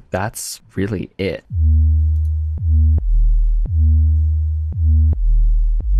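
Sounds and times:
speech: 0.1s - 1.7s
deep sine-wave synth bass with pitch envelope and filter drive: 1.5s - 5.9s.

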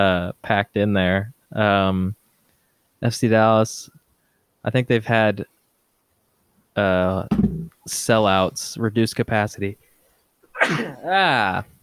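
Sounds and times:
speech: 0.0s - 2.2s, 3.0s - 4.0s, 4.6s - 5.5s, 6.8s - 9.8s, 10.6s - 11.7s
loud sneeze: 10.5s - 11.2s.

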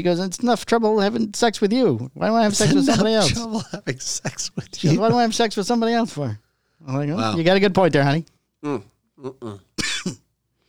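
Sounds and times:
speech: 0.0s - 10.2s
person clearing throat: 2.5s - 3.8s, 8.7s - 10.3s
person coughing: 2.5s - 3.8s, 9.8s - 10.3s
laughter: 2.5s - 5.6s.

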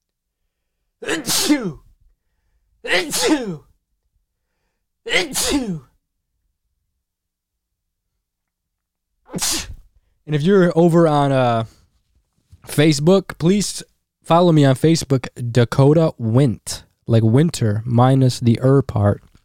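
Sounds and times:
person sneezing: 1.0s - 1.9s, 2.8s - 3.7s, 5.1s - 6.0s, 9.3s - 9.9s
speech: 1.1s - 1.8s, 2.8s - 3.6s, 5.0s - 5.9s, 10.3s - 11.8s, 12.6s - 19.3s.

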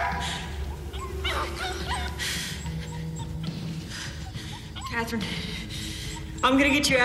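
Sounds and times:
small dog whimpering: 0.2s - 7.0s
small dog barking and yipping: 0.8s - 5.1s
speech: 5.1s - 5.7s, 6.4s - 7.0s.

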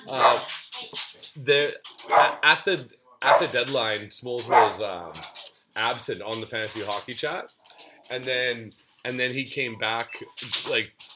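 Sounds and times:
speech: 0.0s - 11.1s
dog barking: 0.1s - 0.5s, 2.0s - 2.4s, 3.2s - 3.6s, 4.5s - 4.8s.

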